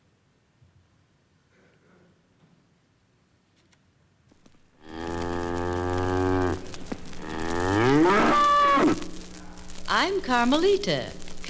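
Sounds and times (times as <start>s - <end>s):
cow mooing from a talking store display record: 4.8s - 9.2s
speech: 10.0s - 11.4s.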